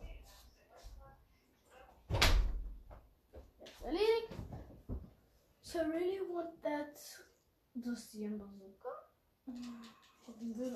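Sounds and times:
door shut with a solid thud: 2.1 - 2.8
speech: 5.7 - 8.9, 9.5 - 10.7.

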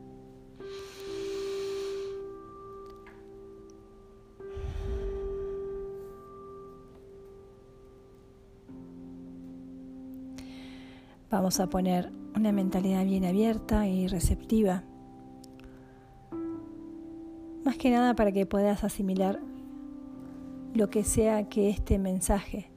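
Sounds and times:
slow deep breath in and out in a guided breathing exercise: 0.6 - 2.4, 4.4 - 6.0, 10.4 - 11.3, 15.6 - 16.3
speech: 11.3 - 14.9, 17.7 - 19.5, 20.8 - 22.7.

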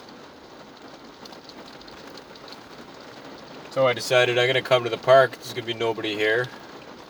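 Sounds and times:
steady rain in a park hitting the roof of a car: 0.0 - 7.0
speech: 3.7 - 6.6.

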